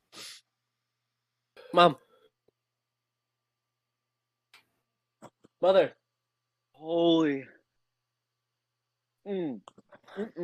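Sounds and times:
person sneezing: 0.1s - 0.4s
speech: 1.7s - 2.0s, 5.6s - 6.0s, 6.8s - 7.5s, 9.2s - 10.4s.

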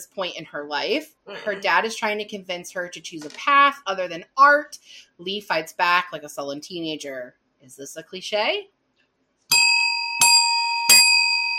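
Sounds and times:
speech: 0.0s - 8.8s
bright bell ringing: 9.5s - 11.5s.

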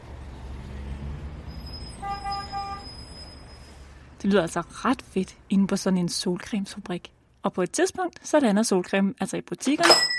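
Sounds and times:
big truck engine droning at sunscreen factory warehouse: 0.0s - 4.2s
big truck horn toot: 1.6s - 3.4s
speech: 4.2s - 10.1s.

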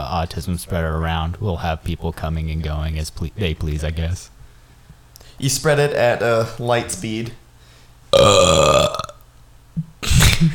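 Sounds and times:
speech: 0.1s - 4.4s, 5.4s - 7.4s
loud drawn-out burp and rough raspy belch: 8.1s - 9.2s.

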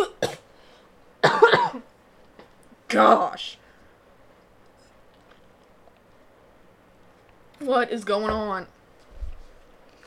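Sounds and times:
person coughing: 0.0s - 0.5s, 1.2s - 1.8s
speech: 2.9s - 3.6s, 7.7s - 8.8s.

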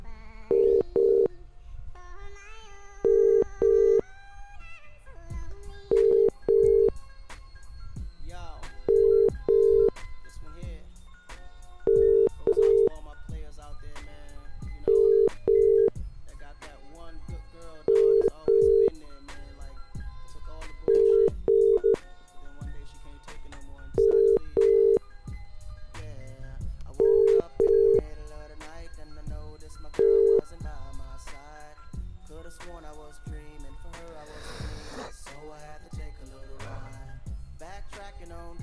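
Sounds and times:
busy musical backing: 0.0s - 38.6s
telephone ringing unanswered: 0.5s - 1.3s, 3.1s - 4.0s, 5.9s - 7.0s, 8.8s - 10.0s, 11.8s - 13.0s, 14.8s - 15.9s, 17.9s - 19.0s, 20.9s - 22.1s, 24.0s - 25.0s, 27.0s - 28.1s, 29.9s - 30.6s.

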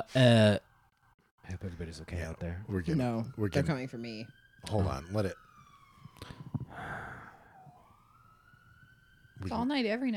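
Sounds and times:
speech: 0.0s - 0.6s, 1.5s - 5.5s, 6.2s - 7.2s, 9.4s - 10.1s
faint police siren wailing outside: 0.0s - 10.1s
person sniffing: 6.2s - 7.4s.

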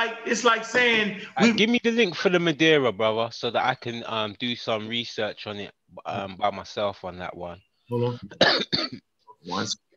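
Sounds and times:
speech: 0.0s - 9.9s
person coughing harshly: 8.3s - 9.0s.

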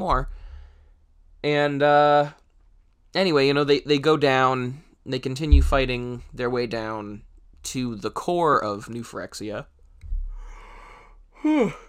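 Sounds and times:
speech: 0.0s - 0.4s, 1.4s - 2.4s, 3.1s - 9.7s, 11.4s - 11.8s
yawn: 11.4s - 11.8s.

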